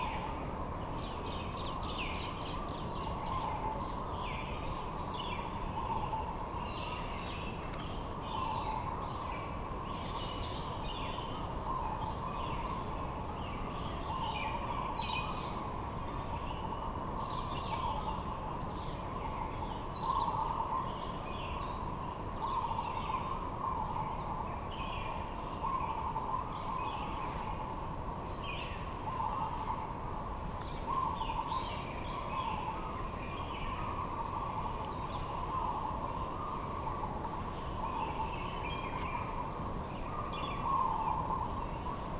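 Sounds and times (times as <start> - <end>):
outdoor ambience at Bras d'eau in Mauritius: 0.0 - 42.1.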